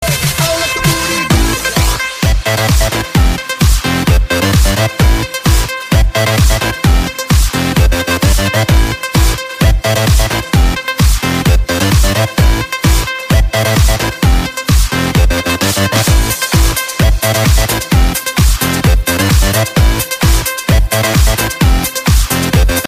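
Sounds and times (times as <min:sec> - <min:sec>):
electronica music: 0:00.0 - 0:22.8.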